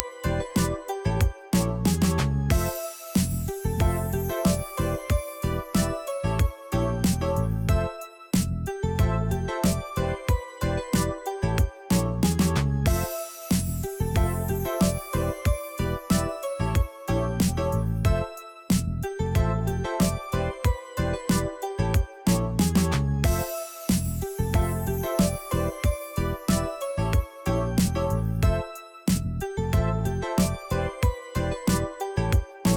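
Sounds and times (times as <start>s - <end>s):
game background music: 0.0s - 32.7s.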